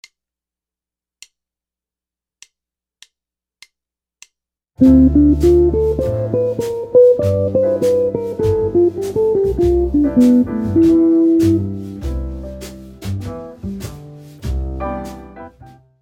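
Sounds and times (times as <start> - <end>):
bebop jazz guitar: 4.8 - 15.8.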